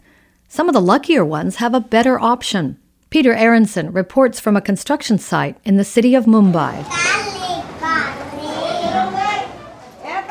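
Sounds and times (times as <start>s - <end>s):
speech: 0.6s - 7.2s
toddlers chattering and babbling in a tin-shack daycare center: 6.4s - 10.2s
child calling out: 6.8s - 9.6s.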